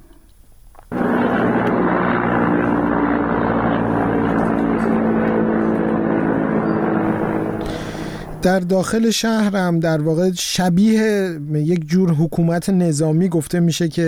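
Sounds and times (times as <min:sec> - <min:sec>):
helicopters flying over the city of Mahabad: 0:00.9 - 0:09.1
speech: 0:08.4 - 0:14.0.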